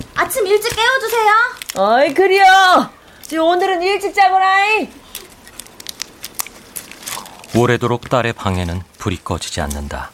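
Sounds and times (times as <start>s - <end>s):
speech: 0.3s - 5.0s, 7.6s - 10.1s
shells of dried insect-eaten chestnuts cracking as they are peeled: 0.6s - 2.5s, 5.0s - 8.2s.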